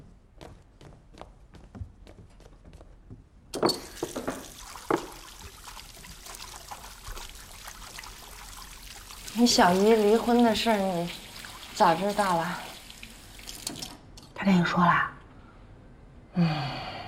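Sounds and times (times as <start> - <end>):
water running from a tap over hands being washed: 3.6 - 14.1
speech: 9.4 - 11.2, 11.8 - 12.7, 14.4 - 15.1, 16.4 - 16.7.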